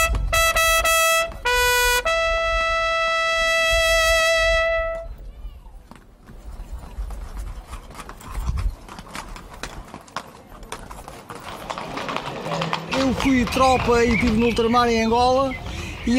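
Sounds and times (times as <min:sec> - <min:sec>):
horse hooves clip-clopping on hard ground during a horseback pilgrimage: 0:00.0 - 0:02.2, 0:05.8 - 0:16.1
outdoor crowd noise: 0:00.0 - 0:16.1
speech: 0:13.3 - 0:16.1.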